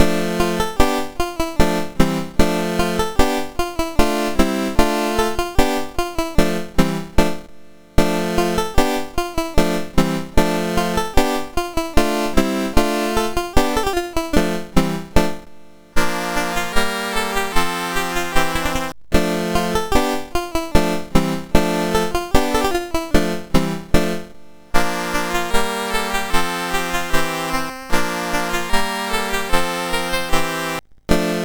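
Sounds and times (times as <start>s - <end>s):
chiptune music on a MOS6581R2 sound chip: 0.0s - 31.4s.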